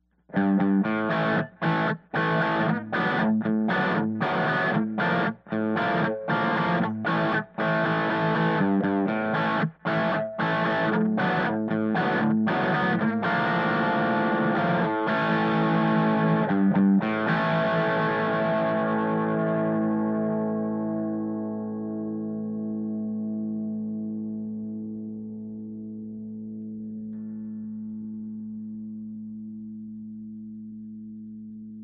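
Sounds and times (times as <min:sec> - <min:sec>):
amp four feet from wall: 0:00.3 - 0:30.0.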